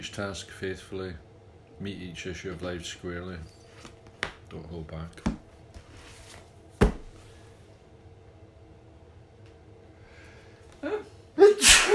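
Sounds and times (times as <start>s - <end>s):
speech: 0.0s - 3.6s, 4.5s - 5.4s
low steady hum: 0.0s - 11.9s
sneeze: 11.4s - 11.9s.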